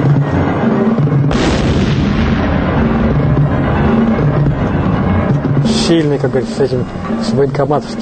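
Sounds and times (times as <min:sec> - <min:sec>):
heavy low rumble: 0:00.0 - 0:08.0
loud bomb blast: 0:01.2 - 0:05.8
speech: 0:05.9 - 0:08.0.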